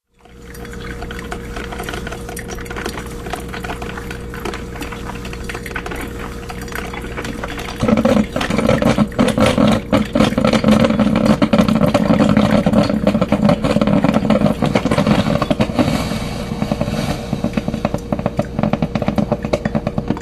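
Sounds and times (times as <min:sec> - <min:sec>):
coffee maker dripping: 0:00.0 - 0:20.2.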